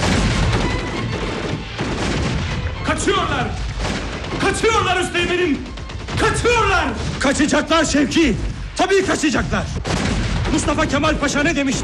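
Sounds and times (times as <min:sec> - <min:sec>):
gunfire volley in a battle: 0:00.0 - 0:11.8
speech: 0:03.0 - 0:03.7, 0:04.3 - 0:11.8.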